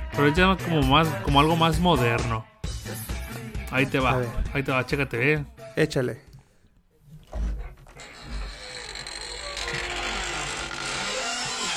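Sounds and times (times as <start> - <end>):
speech: 0.1 - 3.1, 3.7 - 6.3
door creaking open with a grinding groan: 7.3 - 11.7.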